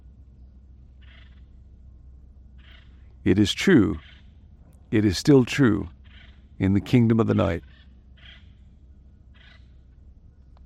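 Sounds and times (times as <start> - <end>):
steady low rumble of outdoor noise: 0.0 - 10.6
little crow calling: 1.0 - 1.6, 2.5 - 10.0
speech: 3.2 - 4.1, 4.9 - 6.0, 6.6 - 7.8.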